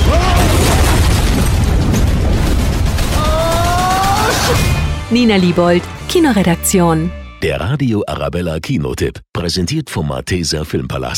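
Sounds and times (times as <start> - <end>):
powerful sci-fi weapon firing in a roaring blast: 0.0 - 4.9
speech: 5.1 - 11.1.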